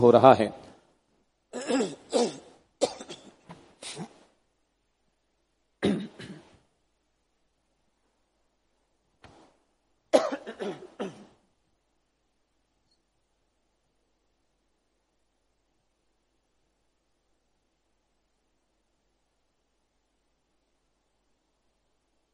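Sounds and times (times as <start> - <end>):
speech: 0.0 - 0.7
person coughing: 1.5 - 4.2, 5.8 - 6.5, 10.2 - 11.4.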